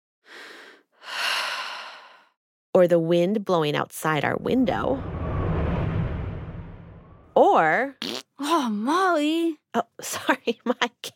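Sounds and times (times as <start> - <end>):
human breathing: 0.3 - 2.4
speech: 2.8 - 5.2, 7.4 - 11.1.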